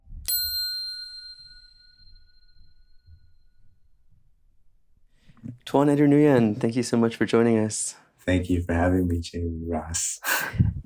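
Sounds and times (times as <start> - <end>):
single bell struck: 0.3 - 3.6
speech: 5.7 - 10.7.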